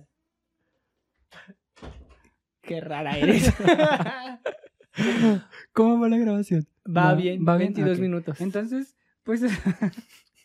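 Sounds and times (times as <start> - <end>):
door pulled shut with a rattling scrape and thud: 1.8 - 2.2
speech: 2.7 - 10.3
laughter: 3.2 - 5.6, 9.4 - 10.4.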